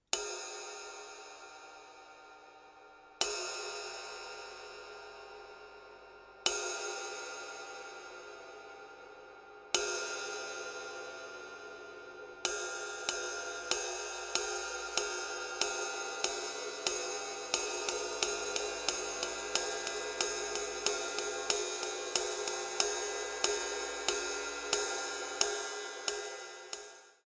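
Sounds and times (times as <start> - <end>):
flat ride cymbal single hits: 0.0 - 27.2.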